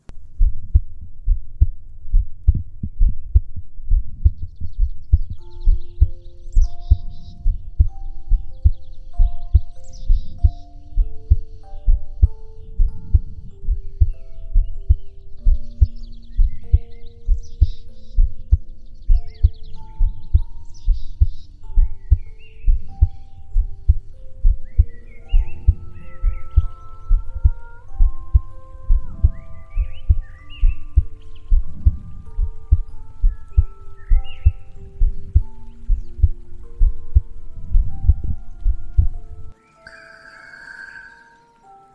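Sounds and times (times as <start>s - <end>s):
person's heartbeat thumping as heard by a doctor: 0.2s - 39.3s
faint high chirps: 4.4s - 41.9s
soft sustained tones: 4.6s - 41.9s.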